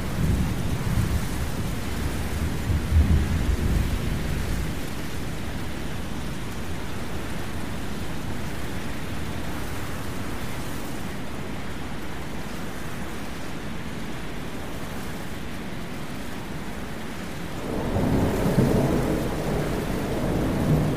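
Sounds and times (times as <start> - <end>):
rolling thunder rumble: 0.0 - 4.9, 17.6 - 20.9
wind and rain from a thunderstorm: 0.0 - 20.9.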